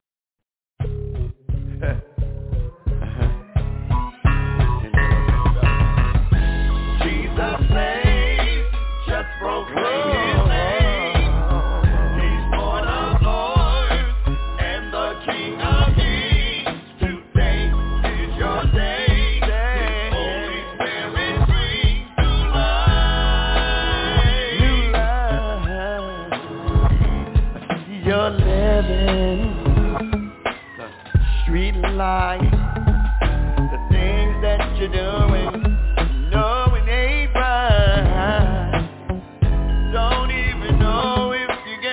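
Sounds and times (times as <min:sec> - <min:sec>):
speech: 0:01.8 - 0:02.1
lo-fi gospel song recording playing: 0:02.9 - 0:41.9.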